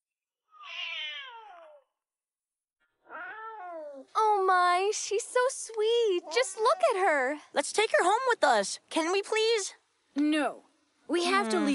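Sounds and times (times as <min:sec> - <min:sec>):
kitten meowing: 0:00.5 - 0:01.8, 0:03.1 - 0:04.0
speech: 0:04.0 - 0:11.7.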